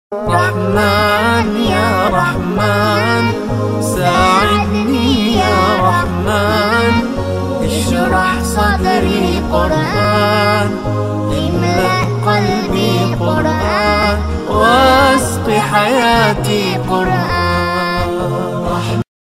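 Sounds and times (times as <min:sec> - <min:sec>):
Islamic naat ringtone: 0:00.2 - 0:19.0.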